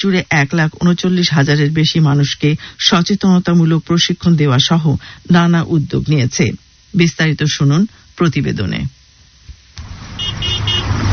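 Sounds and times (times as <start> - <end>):
speech: 0.0 - 9.0
steady traffic rumble: 9.8 - 11.1
hydraulic car horns honking on a busy road in Dhaka: 9.9 - 11.1.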